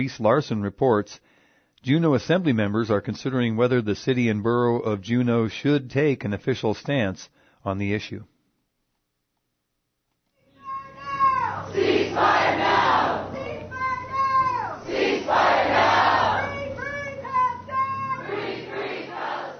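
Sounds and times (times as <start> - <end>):
speech: 0.0 - 8.3, 12.2 - 12.4
individual yells: 10.5 - 11.8, 12.6 - 14.9, 15.8 - 18.4
rally crowd shouting and chanting: 10.6 - 19.5.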